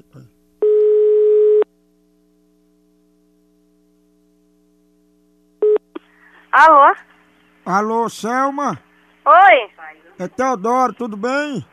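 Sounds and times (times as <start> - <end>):
ringing tone of an outgoing telephone call: 0.6 - 1.6
speech: 6.5 - 7.1, 7.7 - 11.7.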